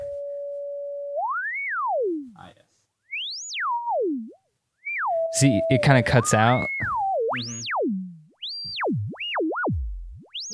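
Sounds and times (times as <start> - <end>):
pure synthesizer sine tone: 0.0 - 2.3, 3.2 - 10.5
speech: 5.4 - 7.8.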